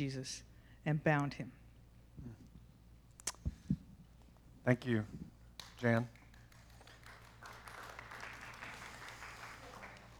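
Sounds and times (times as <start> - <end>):
speech: 0.0 - 1.6, 2.2 - 2.4, 4.6 - 6.2
small group applauding after a reading: 5.5 - 10.1.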